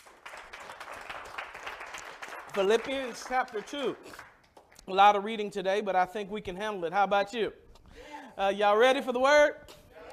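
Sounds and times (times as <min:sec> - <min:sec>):
church audience clapping: 0:00.0 - 0:05.2
speech: 0:02.6 - 0:04.3, 0:04.9 - 0:07.6, 0:08.4 - 0:09.7.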